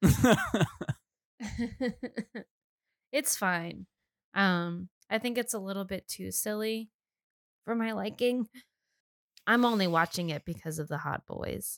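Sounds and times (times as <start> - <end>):
speech: 0.0 - 0.8, 3.2 - 7.0, 7.6 - 8.7, 9.5 - 11.7
loud rasping hacking cough: 0.0 - 0.9
laughter: 0.0 - 2.4.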